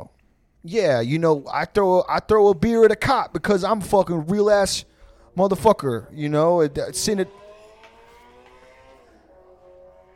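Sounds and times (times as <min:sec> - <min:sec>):
speech: 0:00.6 - 0:07.4
motorcycle engine passing by: 0:06.4 - 0:10.1.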